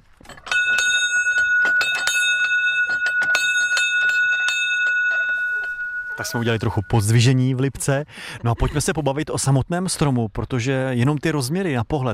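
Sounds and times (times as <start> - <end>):
bell rung in quick uneven strokes: 0.4 - 7.6
speech: 6.2 - 12.1.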